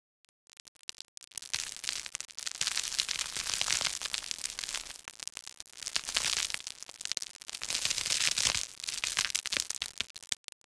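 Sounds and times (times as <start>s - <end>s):
falling grit on rocks: 0.8s - 10.4s.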